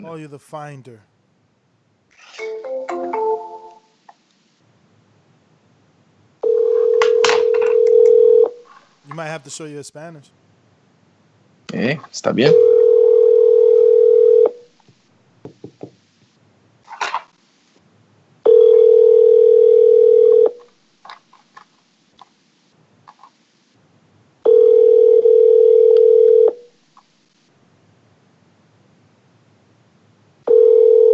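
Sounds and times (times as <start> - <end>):
speech: 0.0 - 1.1, 9.1 - 10.4, 11.7 - 12.7
electronic telephone ringback tone: 2.4 - 3.9, 6.4 - 8.5, 12.6 - 14.5, 18.5 - 20.5, 24.5 - 26.5, 30.5 - 31.1.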